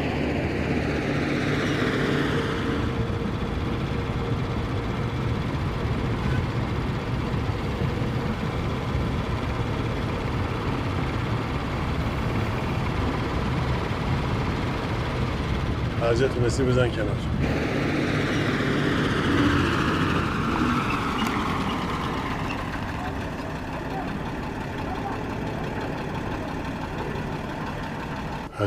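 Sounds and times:
car engine and road noise driving through city streets: 0.0s - 28.6s
speech: 16.1s - 17.6s.

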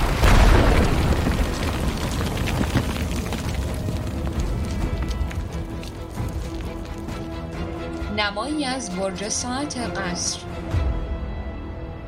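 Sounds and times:
houses built of reed matting exploding with a loud low boom: 0.0s - 4.8s
rough rumble and crackle of debris: 0.0s - 8.0s
speech: 8.2s - 10.8s.

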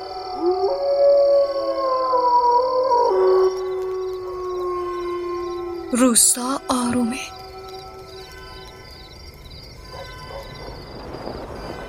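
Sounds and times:
wolf howling in a thicket near a village: 0.0s - 8.3s
speech: 5.9s - 7.4s.

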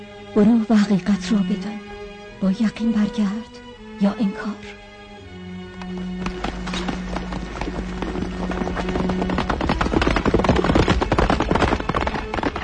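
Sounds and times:
speech: 0.0s - 1.8s, 2.4s - 4.8s
horse galloping with a rider aboard: 5.6s - 12.6s.

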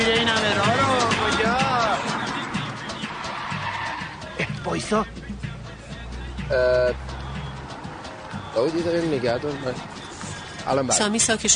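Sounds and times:
car engine roaring: 0.0s - 10.9s
car tires skidding: 0.0s - 11.0s
speech: 4.8s - 5.3s, 6.5s - 7.1s, 8.6s - 10.0s, 10.6s - 11.5s.

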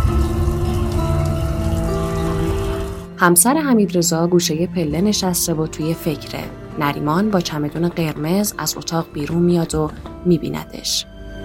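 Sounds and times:
hot shower running in a bathroom: 0.0s - 3.1s
speech: 3.2s - 11.1s.

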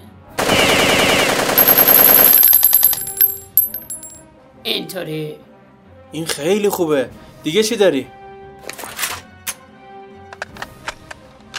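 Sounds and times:
machine gun firing a full burst of rapid automatic gunfire: 0.4s - 2.5s
speech: 4.7s - 5.5s, 6.1s - 8.2s.

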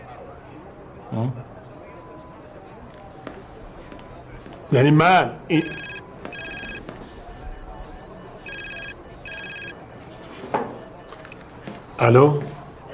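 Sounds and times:
speech: 1.1s - 1.5s, 4.7s - 5.9s, 12.0s - 12.5s
telephone ringing with a pulsing electronic trill: 5.5s - 11.4s.

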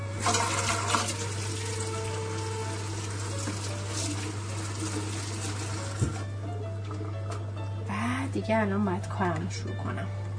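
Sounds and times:
running water while washing hands: 0.0s - 7.5s
speech: 8.4s - 10.2s.

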